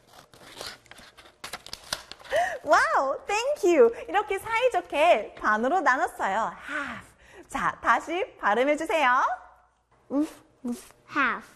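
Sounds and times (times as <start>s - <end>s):
scissors cutting a sheet of colored paper in half: 0.0s - 2.2s
speech: 2.7s - 9.4s, 10.1s - 11.5s.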